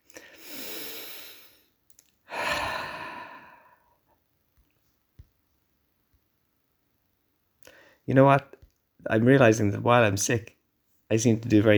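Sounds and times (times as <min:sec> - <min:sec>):
person taking a deep breath: 0:00.0 - 0:04.0
speech: 0:08.1 - 0:11.7.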